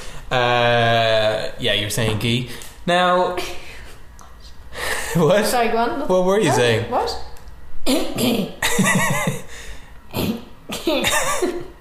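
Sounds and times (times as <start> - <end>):
speech: 0.3 - 3.6, 5.2 - 7.3, 7.9 - 9.4
person coughing: 7.9 - 8.6, 10.1 - 11.5.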